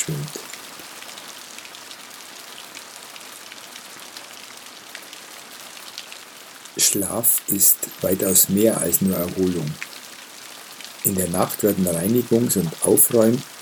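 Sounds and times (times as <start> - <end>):
steady rain: 0.0 - 13.6
speech: 6.8 - 9.9, 11.0 - 13.5.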